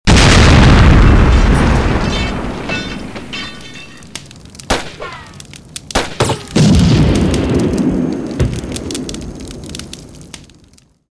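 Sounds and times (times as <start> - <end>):
fuel explosion: 0.1 - 2.7, 6.6 - 9.6.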